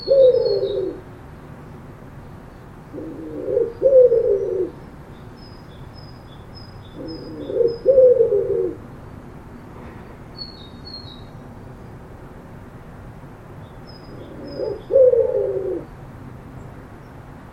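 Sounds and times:
bird cooing low: 0.0s - 1.0s, 2.9s - 4.8s, 7.0s - 8.8s, 14.1s - 15.9s.

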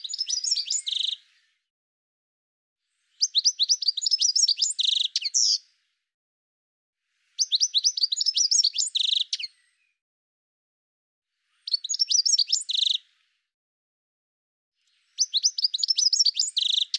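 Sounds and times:
bird song with rapid varied chirps and trills: 0.0s - 1.2s, 3.2s - 5.6s, 7.4s - 9.7s, 11.6s - 13.0s, 15.1s - 16.9s.

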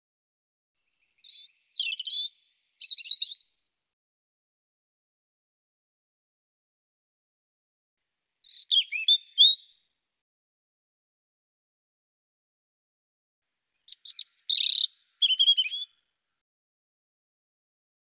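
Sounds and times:
European robin singing: 0.9s - 3.5s, 8.5s - 9.8s, 13.9s - 16.0s.

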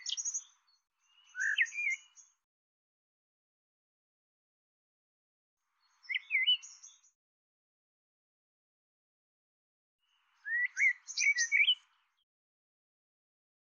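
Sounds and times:
bird twittering chirps: 0.0s - 2.4s, 5.9s - 7.1s, 10.3s - 11.9s.

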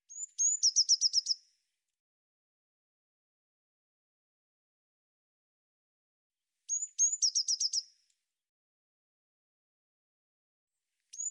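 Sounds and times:
Eurasian blue tit singing: 0.1s - 1.4s, 6.7s - 8.0s.

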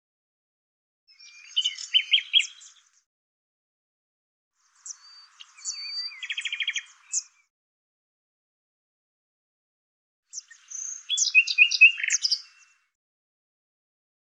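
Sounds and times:
common nightingale singing: 1.1s - 3.0s, 4.6s - 7.5s, 10.3s - 12.9s.

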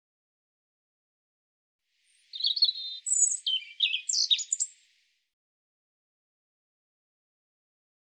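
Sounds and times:
European robin singing: 2.1s - 5.0s.

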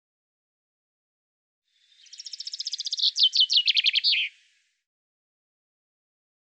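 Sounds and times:
common chaffinch song: 1.8s - 4.8s.

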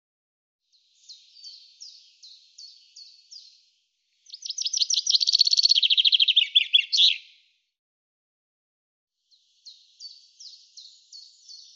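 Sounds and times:
common chaffinch song: 0.7s - 7.5s, 9.2s - 11.7s.

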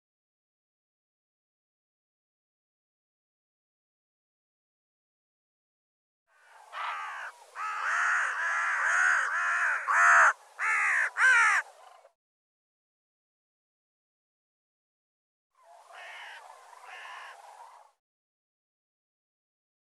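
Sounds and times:
bird calling with hoarse caws: 6.3s - 12.1s, 15.7s - 17.8s.

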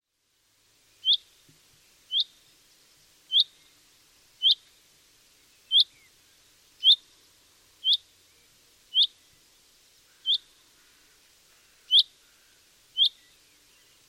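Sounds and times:
common chaffinch calling: 1.0s - 1.3s, 2.1s - 2.4s, 3.3s - 3.7s, 4.4s - 4.7s, 5.6s - 6.1s, 6.8s - 7.0s, 7.8s - 8.1s, 8.9s - 9.2s, 10.1s - 14.0s.

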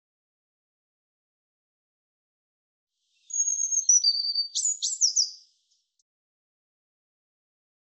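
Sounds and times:
European robin singing: 3.2s - 5.8s.

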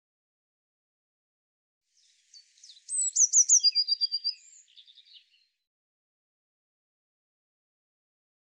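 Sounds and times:
Eurasian blue tit call: 2.4s - 5.4s.

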